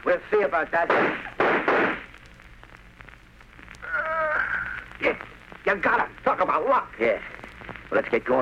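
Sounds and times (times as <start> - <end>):
speech: 0.0 - 1.9, 5.0 - 7.3, 7.9 - 8.4
gunshots in an old radio crime drama: 0.9 - 2.1.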